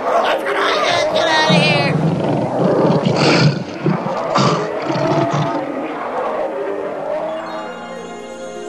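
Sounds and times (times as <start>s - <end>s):
lion roaring: 0.0s - 7.4s.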